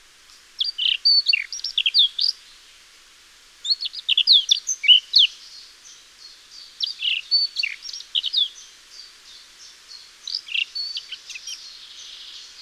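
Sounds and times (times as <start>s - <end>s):
steady airy hiss: 0.0s - 12.6s
Eurasian blackcap Sylvia atricapilla warbling run of chirps and whistles: 0.6s - 2.4s, 3.6s - 8.7s, 9.9s - 12.6s.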